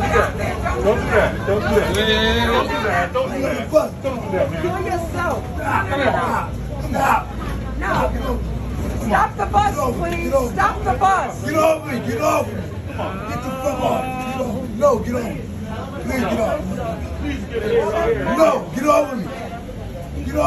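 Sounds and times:
city bus engine rumble: 0.0s - 20.4s
many overlapping voices chattering inside a city bus: 0.0s - 20.4s.

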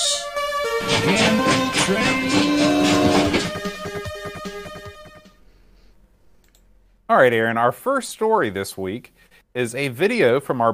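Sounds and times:
loud busy show jingle: 0.1s - 5.4s
train sound effect with whistle-like tones and chugging: 0.4s - 5.2s
speech: 0.8s - 2.5s, 7.1s - 10.7s.

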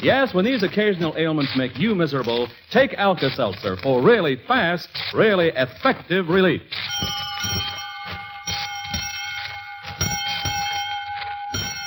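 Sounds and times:
speech: 0.0s - 7.6s
school bell ringing: 6.8s - 11.8s.

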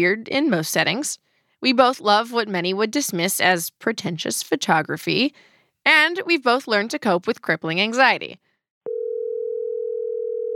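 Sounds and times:
speech: 0.0s - 8.4s
telephone dial tone: 8.9s - 10.5s.

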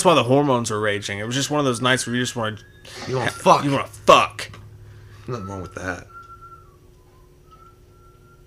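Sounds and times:
speech: 0.0s - 4.6s, 5.3s - 6.1s
steady low hum: 0.0s - 8.4s
person whistling a tune: 1.8s - 3.9s, 5.1s - 8.4s.

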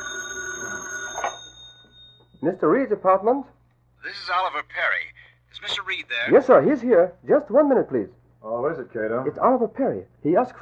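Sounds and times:
old-fashioned telephone bell ringing: 0.0s - 2.3s
speech: 2.4s - 10.6s.

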